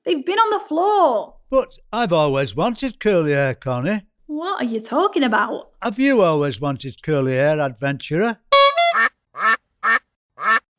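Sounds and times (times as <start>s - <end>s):
speech: 0.1s - 8.4s
duck quacking while eating a bread crust: 8.6s - 10.7s.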